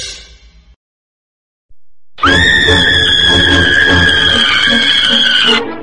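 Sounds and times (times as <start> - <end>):
person screaming in desperation and terror: 2.2 - 5.6.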